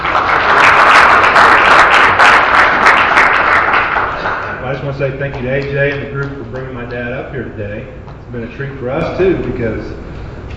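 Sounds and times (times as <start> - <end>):
roomful of people applauding: 0.0 - 6.7
speech: 4.9 - 10.0.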